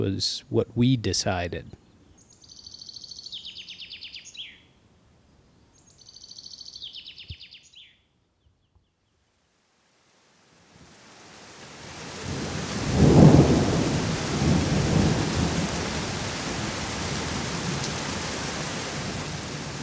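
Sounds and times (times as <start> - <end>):
speech: 0.0 - 1.8
soft steady outdoor hiss: 0.0 - 19.8
songbird trilling on hiking trail down the Karren mountain near Dornbirn, Austria: 1.7 - 4.7, 5.7 - 8.0
rain falling in evening rainstorm over the Karren and Dornbirn, Austria: 9.6 - 19.8
thunder rumbling in evening rainstorm over the Karren and Dornbirn, Austria: 12.2 - 19.8.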